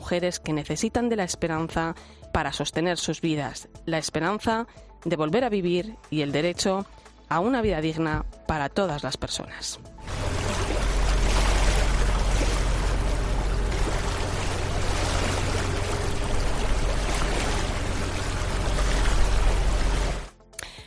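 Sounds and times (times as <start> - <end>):
speech: 0.1 - 10.3
continuous wash of sea water: 10.1 - 20.3.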